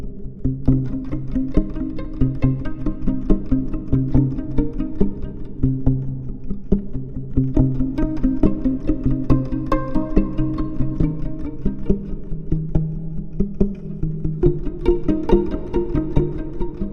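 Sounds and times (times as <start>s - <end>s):
pizzicato strings passing: 0.4s - 16.9s.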